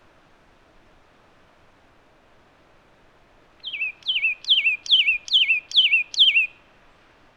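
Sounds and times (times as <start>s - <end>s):
satin flycatcher Myiagra cyanoleuca downslurred whistle: 3.6s - 6.5s.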